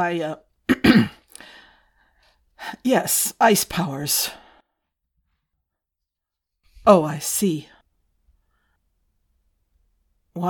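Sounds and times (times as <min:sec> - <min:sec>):
speech: 0:00.0 - 0:01.2, 0:02.8 - 0:04.4, 0:06.8 - 0:07.7
man clearing his throat: 0:00.7 - 0:01.2.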